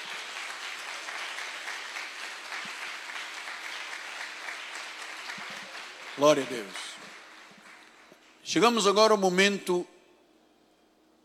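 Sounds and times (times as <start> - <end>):
audience applauding: 0.0 - 8.2
speech: 6.2 - 6.9, 8.5 - 9.9.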